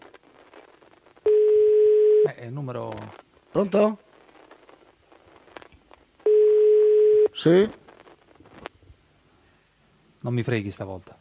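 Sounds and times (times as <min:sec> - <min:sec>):
mobile phone ringing: 0:01.3 - 0:02.3, 0:06.3 - 0:07.3
speech: 0:02.3 - 0:04.0, 0:07.4 - 0:07.8, 0:10.2 - 0:11.1.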